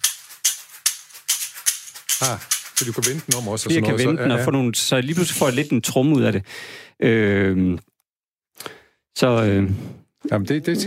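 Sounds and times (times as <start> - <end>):
caxixi Brazilian rattle shaken in a steady rhythm: 0.0 - 3.9, 5.0 - 5.8
speech: 2.2 - 7.9, 9.2 - 10.8.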